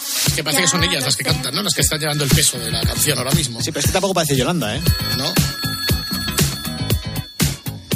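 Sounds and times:
speech: 0.4s - 5.8s
telephone bell ringing with bright electronic tones: 0.6s - 7.9s.

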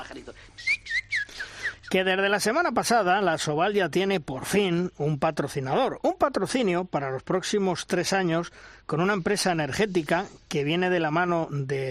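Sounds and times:
small pet birds chirping: 0.4s - 2.1s
speech: 1.9s - 11.8s.

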